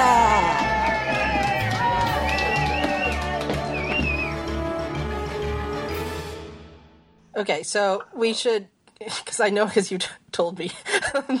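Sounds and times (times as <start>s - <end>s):
large crowd cheering and shouting: 0.0s - 5.3s
speech: 7.4s - 11.3s.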